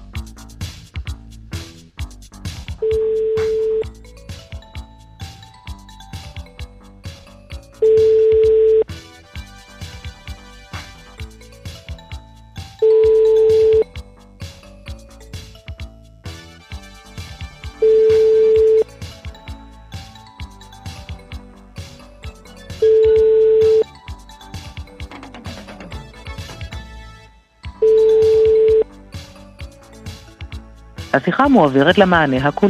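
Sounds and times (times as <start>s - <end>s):
rhythmic musical backing: 0.0s - 32.6s
outgoing call ringback tone beeps: 2.8s - 3.9s, 7.8s - 8.9s, 12.8s - 13.9s, 17.8s - 18.9s, 22.8s - 23.9s, 27.8s - 28.9s
speech: 31.2s - 32.6s.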